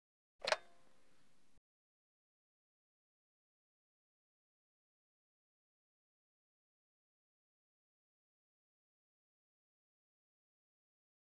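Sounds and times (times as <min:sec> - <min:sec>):
household push-button telephone handset: 0:00.4 - 0:01.5.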